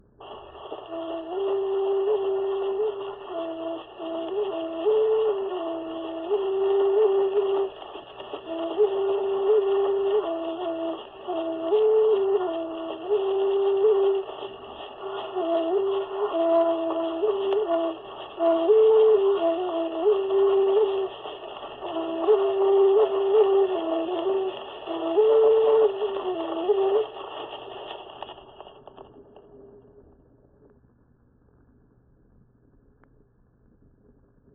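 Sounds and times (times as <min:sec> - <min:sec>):
Hawaiian place-name chant: 0:00.9 - 0:27.2.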